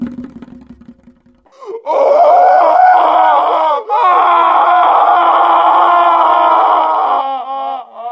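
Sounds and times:
loud sustained human scream: 1.6 - 8.0.

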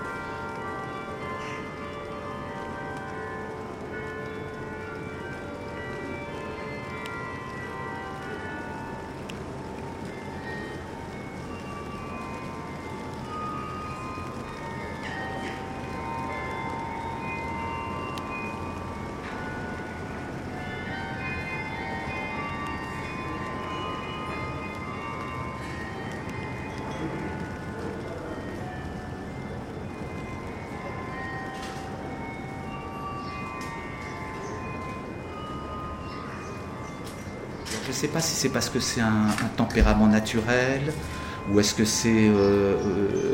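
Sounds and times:
carillon bells in Forcalquier playing a slow melody: 0.0 - 43.3
speech: 38.0 - 43.3.

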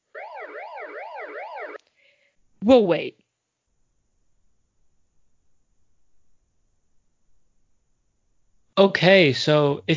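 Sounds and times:
loud electronic siren sweeping up and down in pitch: 0.1 - 1.8
speech: 2.6 - 3.2, 8.8 - 9.9.

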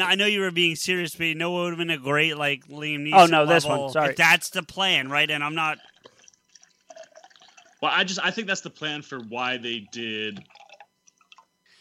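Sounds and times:
speech: 0.0 - 5.9, 7.8 - 10.5
steady rushing stream of water being poured: 5.4 - 8.3, 8.9 - 11.6
quick bright liquid plinks: 5.4 - 11.7.

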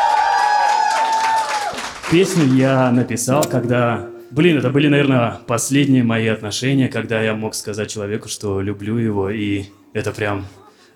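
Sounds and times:
audience clapping: 0.0 - 2.6
speech: 2.1 - 10.6.

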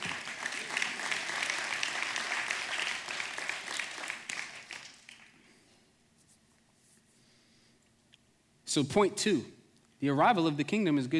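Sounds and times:
crowd applauding: 0.0 - 5.4
speech: 8.7 - 11.1.

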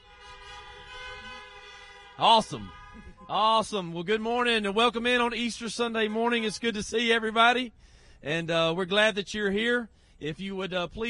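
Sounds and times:
car horns honking: 0.0 - 7.4
speech: 2.2 - 11.0.

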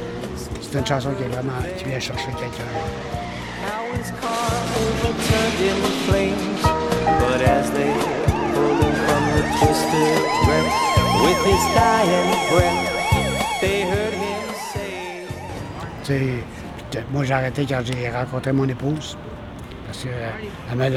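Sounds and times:
speech: 0.7 - 8.8, 9.4 - 13.0, 16.1 - 19.3, 20.0 - 20.9
music with a steady pulsing beat: 4.4 - 15.6
ambulance siren wailing after a car crash: 5.0 - 16.6.

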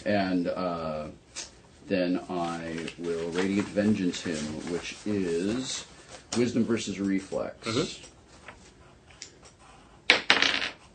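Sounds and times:
speech: 0.0 - 1.2, 1.9 - 8.1
dice clattering across a hard tabletop: 10.1 - 10.9.

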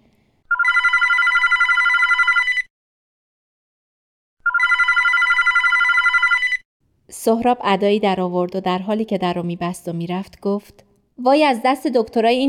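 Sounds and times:
telephone ringing in long buzzing bursts: 0.5 - 2.7, 4.4 - 6.6
speech: 7.2 - 12.4.

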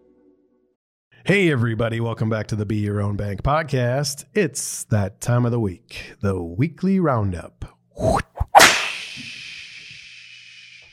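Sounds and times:
speech: 1.2 - 8.2
whooshing swing: 8.0 - 10.8
sharp whip crack: 8.4 - 10.8.

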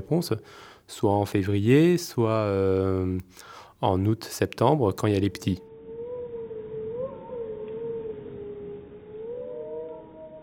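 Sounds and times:
speech: 0.0 - 5.7
wolf pack howling: 5.6 - 10.4.

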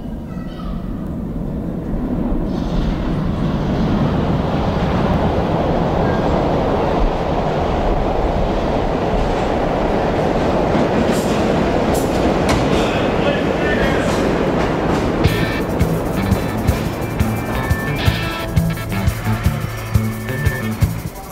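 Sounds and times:
underground train roaring through a tube station: 0.0 - 21.2
music with rhythmic beats: 15.2 - 21.2.

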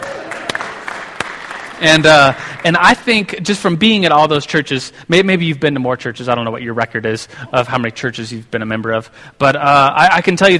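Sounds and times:
applause from a small group: 0.0 - 2.7
speech: 1.8 - 10.5.

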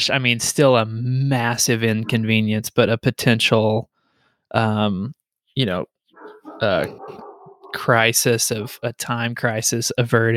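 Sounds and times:
speech: 0.0 - 3.9, 4.5 - 5.9, 6.6 - 10.3
dog barking upstairs: 6.2 - 7.9.

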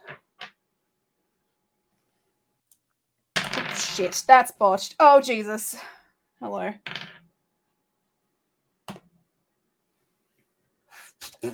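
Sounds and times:
dice clattering on a hard surface: 3.4 - 4.3, 6.8 - 7.3
speech: 4.0 - 6.9.

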